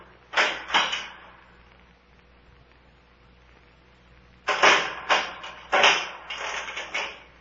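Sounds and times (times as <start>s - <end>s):
door opening and closing with clattering knocks and scrapes: 0.3s - 1.3s, 4.5s - 7.3s
door chain rattling: 4.5s - 7.2s.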